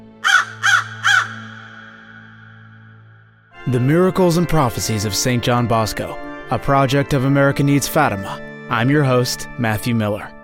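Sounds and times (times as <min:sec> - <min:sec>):
crows cawing harshly: 0:00.0 - 0:03.5
speech: 0:03.6 - 0:10.4.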